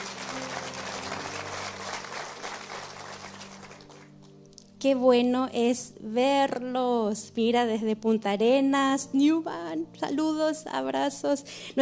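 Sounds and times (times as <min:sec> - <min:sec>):
crowd applauding: 0:00.0 - 0:04.2
speech: 0:04.8 - 0:11.8.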